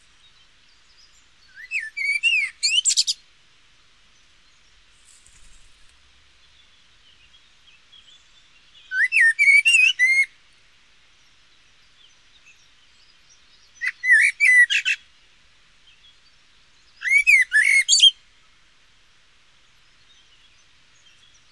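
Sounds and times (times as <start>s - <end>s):
Turdus merula blackbird: 0.0s - 3.2s, 4.2s - 10.6s, 11.2s - 15.1s, 15.8s - 18.3s.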